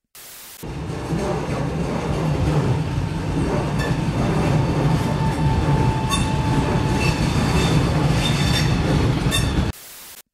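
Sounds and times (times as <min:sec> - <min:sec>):
passenger train in Italy rolling along the rails: 0:00.6 - 0:09.7
faint metallic train wheel squeals and clatter: 0:05.0 - 0:09.7.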